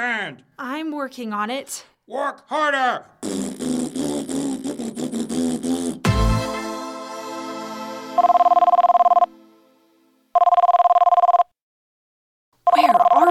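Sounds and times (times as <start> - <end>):
speech: 0.0 - 6.0
telephone ringing electronically: 8.2 - 9.3, 10.3 - 11.5, 12.7 - 13.2.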